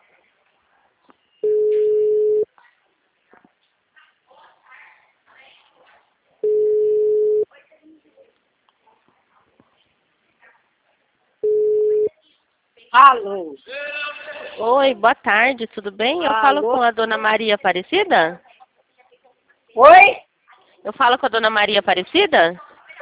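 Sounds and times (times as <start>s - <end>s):
faint noise: 0.0s - 23.0s
telephone ringback tone on an outgoing call: 1.4s - 2.4s, 11.4s - 12.1s
speech: 13.1s - 18.5s, 19.8s - 20.2s, 20.8s - 22.6s.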